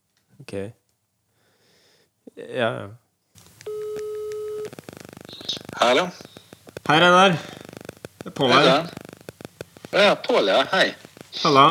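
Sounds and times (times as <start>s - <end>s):
speech: 0.5s - 0.8s, 2.4s - 3.0s, 5.5s - 6.3s, 6.9s - 7.6s, 8.3s - 9.0s, 10.0s - 11.6s
rapid clicking pulses: 3.4s - 11.6s
telephone ringing tone while placing a call: 3.7s - 6.1s.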